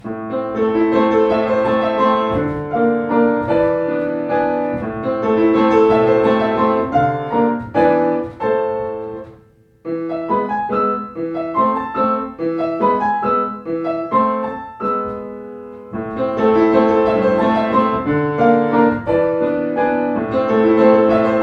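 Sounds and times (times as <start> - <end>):
classical piano piece on a Yamaha piano: 0.0 - 21.4.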